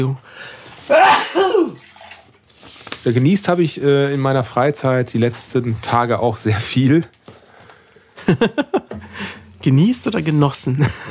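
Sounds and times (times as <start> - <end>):
speech: 0.0 - 1.8, 3.0 - 7.2, 8.3 - 8.8, 9.6 - 11.0
breath: 0.2 - 0.8, 7.3 - 8.2, 9.0 - 9.5
person sneezing: 0.8 - 1.9
laughter: 8.2 - 9.3, 10.8 - 11.0.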